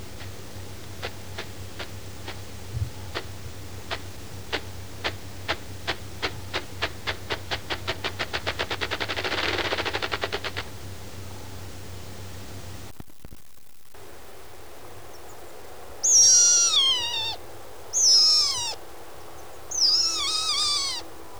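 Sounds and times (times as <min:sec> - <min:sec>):
ruffed grouse: 0:00.1 - 0:12.9, 0:16.1 - 0:18.8, 0:19.7 - 0:21.1.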